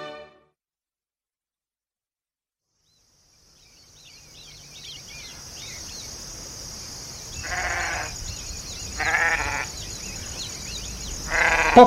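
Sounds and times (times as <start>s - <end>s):
scattered bird chirps: 2.8s - 11.8s
steady high insect drone: 2.9s - 11.8s
flock of grazing sheep bleating: 7.4s - 8.2s, 8.9s - 9.9s, 11.3s - 11.8s.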